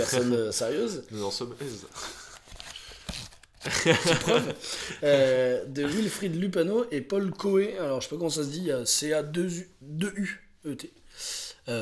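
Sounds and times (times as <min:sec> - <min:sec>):
speech: 0:00.0 - 0:02.2, 0:03.6 - 0:11.7
paper rustling and crinkling: 0:02.1 - 0:03.8
laughter: 0:03.6 - 0:05.3.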